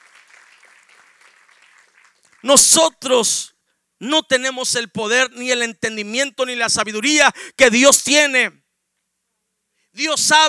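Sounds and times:
audience applause: 0:00.0 - 0:02.4
speech: 0:02.4 - 0:08.6, 0:10.0 - 0:10.4.

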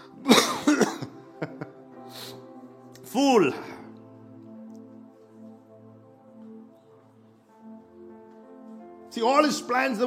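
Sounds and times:
person clearing throat: 0:00.2 - 0:01.2
person coughing: 0:00.2 - 0:01.2
speech: 0:03.1 - 0:03.7, 0:09.2 - 0:10.0.

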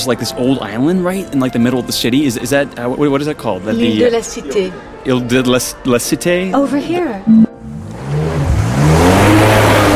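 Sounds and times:
speech: 0:00.0 - 0:07.5
2VX5 amphibious hybrid car engine revving loudly: 0:07.3 - 0:09.9.

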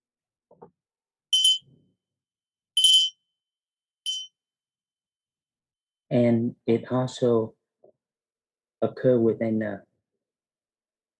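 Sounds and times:
small bell ringing with bright high-pitched dings: 0:01.4 - 0:01.6, 0:02.8 - 0:03.2, 0:04.1 - 0:04.3
speech: 0:06.1 - 0:07.6, 0:08.8 - 0:09.9.

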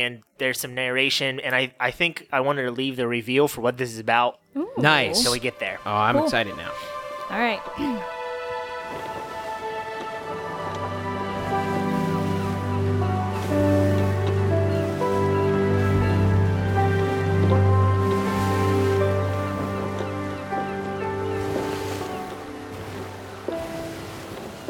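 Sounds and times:
speech: 0:00.0 - 0:08.2
sea waves lapping against the side of a boat on the open sea: 0:08.1 - 0:24.6.

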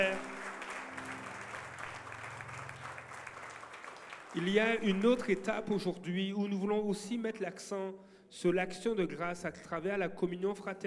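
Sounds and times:
audience applauding: 0:00.0 - 0:05.6
speech: 0:04.4 - 0:10.8.

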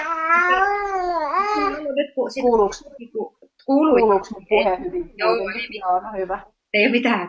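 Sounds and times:
ten-month-old baby babbling: 0:00.0 - 0:01.9
speech: 0:01.9 - 0:07.2.

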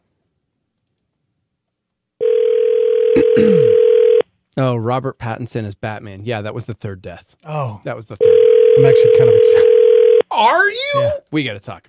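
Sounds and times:
steady unbroken telephone line tone: 0:02.2 - 0:04.2, 0:08.2 - 0:10.2
speech: 0:03.4 - 0:03.8, 0:04.6 - 0:09.7, 0:10.4 - 0:11.8.

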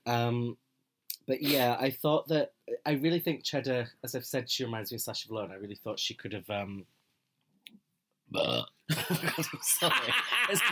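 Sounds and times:
speech: 0:00.1 - 0:00.6, 0:01.3 - 0:07.0, 0:08.3 - 0:10.6
short throaty human burp: 0:08.3 - 0:08.8
laughter: 0:08.9 - 0:10.6.

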